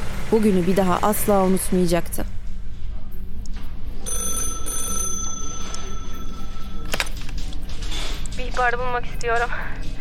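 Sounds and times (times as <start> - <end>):
speech: 0.3 - 2.4, 8.6 - 9.8
telephone ringing: 4.0 - 7.2.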